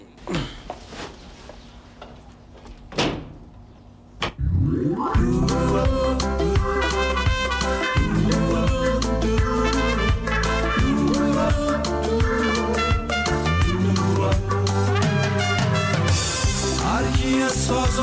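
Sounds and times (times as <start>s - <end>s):
door opening and closing: 2.6s - 3.6s
music: 5.1s - 18.0s.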